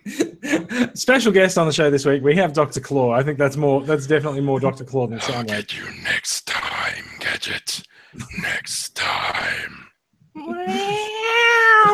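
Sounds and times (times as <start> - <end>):
laughter: 0.0 - 1.0, 10.4 - 11.3
speech: 0.8 - 6.6, 7.4 - 11.9
person imitating a cat meow: 10.4 - 11.9.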